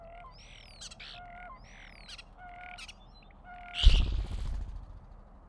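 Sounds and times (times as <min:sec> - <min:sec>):
starling: 0:00.2 - 0:05.3.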